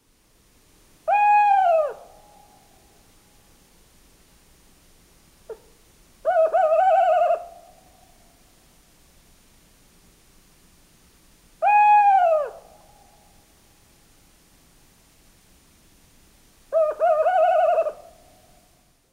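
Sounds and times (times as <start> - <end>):
tawny owl: 1.0 - 3.0, 5.5 - 8.5, 11.6 - 13.4, 16.7 - 18.8.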